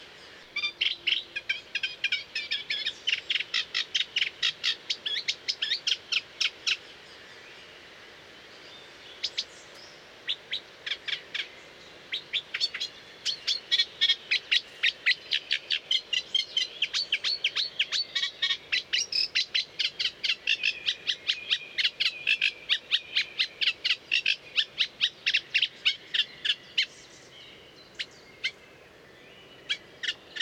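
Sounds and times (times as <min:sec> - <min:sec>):
reed warbler singing: 0:00.0 - 0:07.8, 0:08.4 - 0:30.4.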